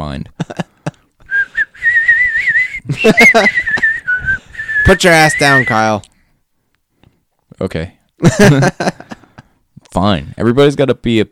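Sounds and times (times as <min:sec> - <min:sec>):
speech: 0:00.1 - 0:00.4, 0:03.0 - 0:03.7, 0:04.9 - 0:06.1, 0:07.6 - 0:09.0, 0:10.0 - 0:11.3
laughter: 0:00.4 - 0:01.1, 0:02.9 - 0:04.0, 0:08.2 - 0:09.5
person whistling a wavering sustained tune: 0:01.3 - 0:05.9.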